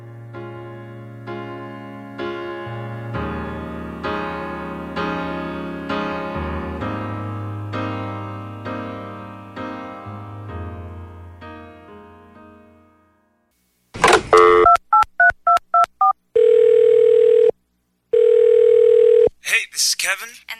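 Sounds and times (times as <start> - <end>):
music: 0.0 - 13.6
long steady telephone rings: 14.0 - 19.3
touch-tone dialing beeps: 14.3 - 17.5, 18.2 - 19.3
voicemail greeting: 15.8 - 17.5, 18.2 - 19.3.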